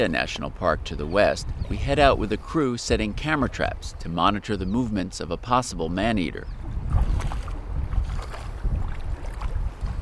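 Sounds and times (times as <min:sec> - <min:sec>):
river water sloshing and knocking against a small boat hull: 0:00.0 - 0:04.4, 0:06.5 - 0:10.0
speech: 0:00.0 - 0:07.3
gusty wind buffeting the microphone: 0:00.0 - 0:10.0.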